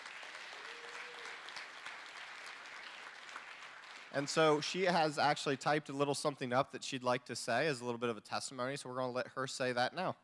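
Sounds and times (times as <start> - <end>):
room full of people clapping: 0.0 - 5.2
speech: 4.1 - 10.2.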